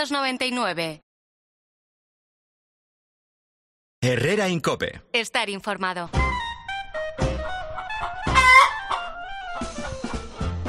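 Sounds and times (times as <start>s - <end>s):
speech: 0.0s - 1.0s, 4.0s - 6.4s
chickens clucking: 7.3s - 10.5s
rooster crowing: 7.9s - 9.1s.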